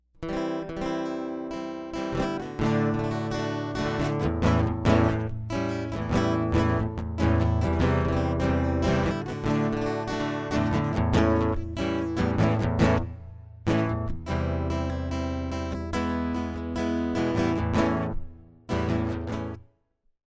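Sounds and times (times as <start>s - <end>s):
overdriven acoustic guitar: 0.2s - 19.6s.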